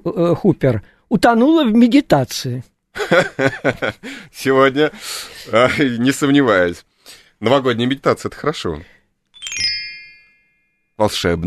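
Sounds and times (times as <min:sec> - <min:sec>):
speech: 0:00.0 - 0:09.0, 0:11.0 - 0:11.4
laughter: 0:03.0 - 0:04.1
bright bell-like chime of a Balinese instrument: 0:09.4 - 0:11.0.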